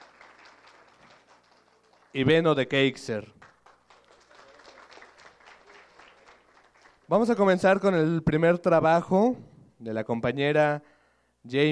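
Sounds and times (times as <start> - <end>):
audience applause: 0.0 - 2.5, 3.4 - 7.2
speech: 2.1 - 3.4, 7.1 - 11.6.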